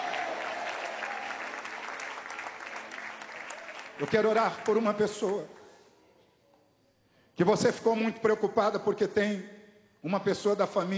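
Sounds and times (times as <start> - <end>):
crowd clapping: 0.0 - 5.6
speech: 4.0 - 5.6, 7.4 - 10.9.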